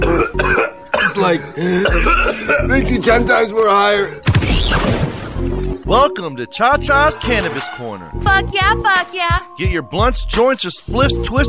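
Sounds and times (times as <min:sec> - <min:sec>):
harsh raspy coughs: 0:00.0 - 0:03.1
laughter: 0:01.0 - 0:04.2, 0:06.9 - 0:08.1
speech: 0:01.2 - 0:05.1, 0:05.9 - 0:11.4.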